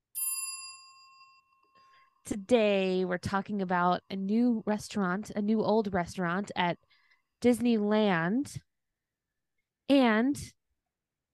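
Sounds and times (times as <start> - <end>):
bright bell ringing: 0.0 - 2.0
speech: 2.3 - 8.7, 9.9 - 10.6.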